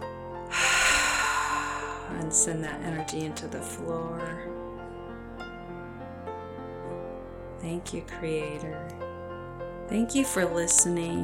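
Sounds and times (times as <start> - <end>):
deep breath in through the nose during a guided meditation: 0.5 - 2.5
speech: 2.1 - 4.6, 7.6 - 9.1, 9.9 - 11.2.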